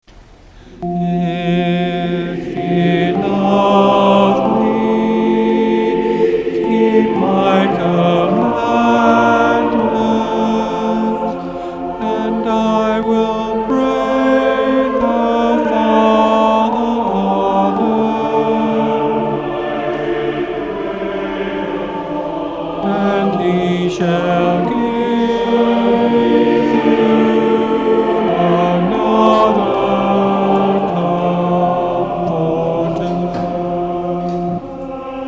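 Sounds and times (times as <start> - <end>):
soprano singing: 0.7 - 35.2.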